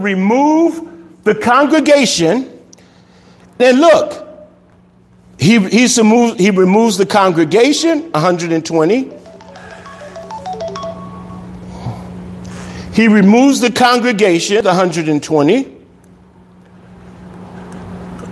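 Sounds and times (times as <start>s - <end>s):
speech: 0.0s - 2.5s, 3.6s - 4.2s, 5.4s - 9.2s, 13.0s - 15.7s
steady low hum: 0.0s - 18.3s
phone ringing with short electronic melody of stepped beeping tones: 9.1s - 11.7s.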